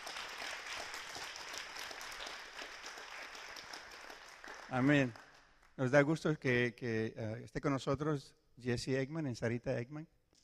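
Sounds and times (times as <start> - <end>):
crowd applause at a church service: 0.0 - 6.2
speech: 4.7 - 5.2, 5.8 - 10.4.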